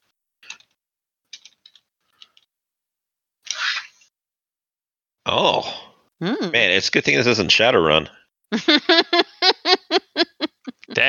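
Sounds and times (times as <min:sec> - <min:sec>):
dice thrown and rolling: 0:01.3 - 0:02.4
speech: 0:05.4 - 0:09.1
laughter: 0:08.5 - 0:11.0.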